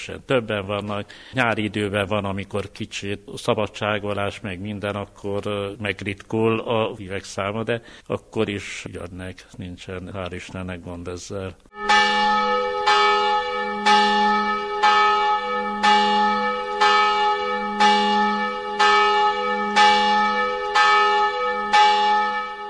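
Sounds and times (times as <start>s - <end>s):
speech: 0.0s - 12.3s
several church bells pealing from a tower: 11.7s - 22.6s.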